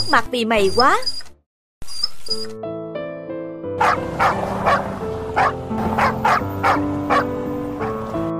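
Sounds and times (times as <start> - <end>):
speech: 0.1 - 1.2, 2.3 - 2.7, 3.8 - 7.0
scruffy small dog yapping: 3.8 - 7.9
sustained musical tones: 3.8 - 8.3.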